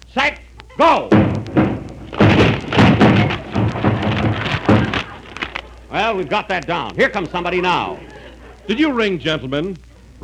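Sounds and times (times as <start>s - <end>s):
speech: 0.2s - 1.2s, 6.0s - 8.1s, 8.7s - 10.2s
laughter: 0.6s - 10.1s
heavy thuds pounding against a door: 1.1s - 5.6s
rattling and crashing: 1.1s - 6.7s.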